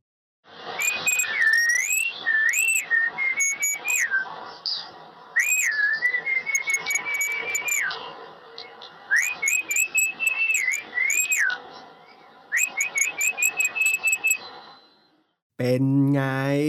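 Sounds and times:
racket-tailed drongo melodious call: 0.8s - 4.1s, 5.4s - 8.0s, 9.2s - 11.6s, 12.6s - 14.4s
speech: 15.6s - 16.6s.

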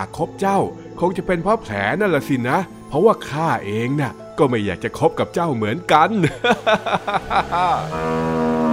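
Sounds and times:
speech: 0.0s - 8.4s
laughter: 6.2s - 8.1s
calf mooing: 7.6s - 8.7s.

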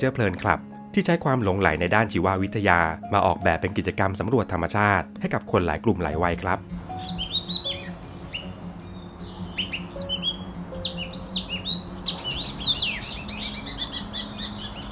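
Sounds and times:
speech: 0.0s - 7.3s
oriental magpie-robin singing varied whistled phrases and chirps: 7.0s - 14.9s.

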